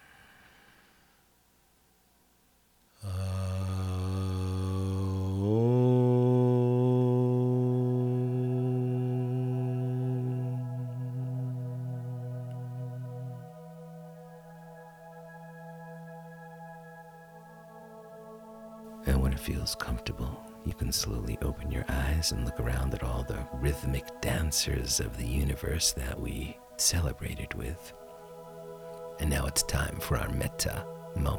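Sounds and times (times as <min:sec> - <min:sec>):
chanted Om from a meditation session: 0:03.0 - 0:31.3
speech: 0:19.4 - 0:28.0, 0:29.2 - 0:31.3.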